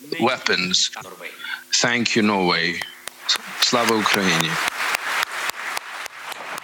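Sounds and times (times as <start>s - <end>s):
speech: 0.1s - 4.7s
large crowd clapping in unison in a big hall after a speech in parliament: 2.8s - 6.6s.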